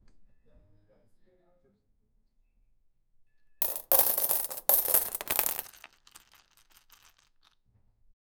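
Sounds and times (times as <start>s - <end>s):
cereal dropping into bowl at breakfast: 3.6s - 7.2s.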